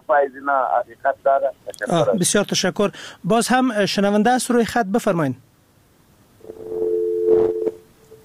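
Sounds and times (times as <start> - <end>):
speech: 0.1 - 5.5
steady electronic phone-line tone after caller disconnected: 6.5 - 8.2.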